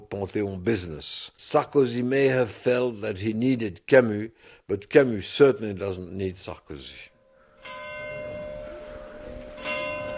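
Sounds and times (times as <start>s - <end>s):
speech: 0.1s - 7.1s
church bells ringing in a village: 7.2s - 10.1s.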